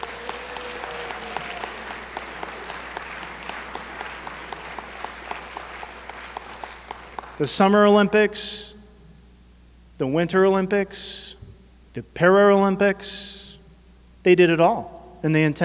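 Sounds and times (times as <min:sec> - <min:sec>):
audience applause: 0:00.0 - 0:07.5
speech: 0:07.4 - 0:08.7, 0:10.0 - 0:11.4, 0:12.0 - 0:13.4, 0:14.2 - 0:15.6.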